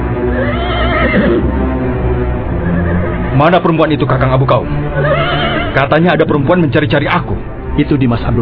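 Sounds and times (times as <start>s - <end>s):
horse neighing: 0.2s - 1.6s, 2.5s - 3.6s, 4.9s - 5.9s
speech: 3.4s - 8.4s.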